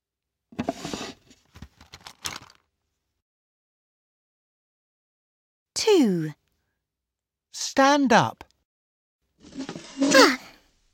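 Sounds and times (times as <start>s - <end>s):
pencil case being pulled out, rustling and crinkling: 0.6s - 2.6s
speech: 5.8s - 6.4s, 7.6s - 8.4s.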